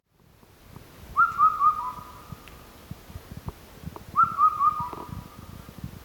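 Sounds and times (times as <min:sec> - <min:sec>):
Indian cuckoo calling: 0:01.2 - 0:02.3, 0:04.2 - 0:05.2.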